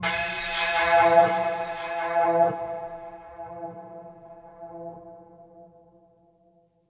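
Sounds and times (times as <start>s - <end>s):
string instrument: 0.0s - 4.5s.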